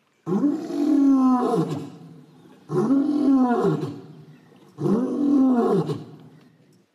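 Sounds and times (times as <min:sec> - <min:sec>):
lion roaring: 0:00.3 - 0:02.0, 0:02.7 - 0:04.1, 0:04.8 - 0:06.2.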